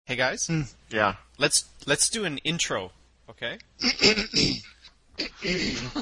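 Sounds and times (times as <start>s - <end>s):
speech: 0.1s - 5.9s
person clearing throat in harsh raspy bursts: 3.8s - 5.9s.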